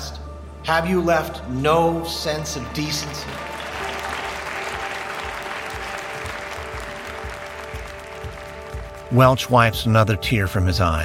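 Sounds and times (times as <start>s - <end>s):
speech: 0.7s - 3.6s, 9.1s - 11.0s
hearing room audience applauding: 3.0s - 9.4s.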